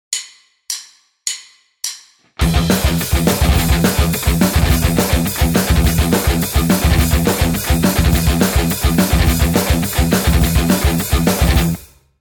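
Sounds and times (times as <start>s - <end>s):
guitar riff: 2.4s - 11.9s.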